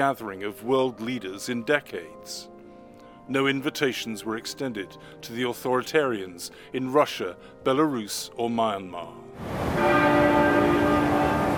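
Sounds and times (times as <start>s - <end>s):
speech: 0.0s - 2.5s, 3.3s - 10.1s
church bells tolling for a monarch's state funeral: 9.6s - 11.5s.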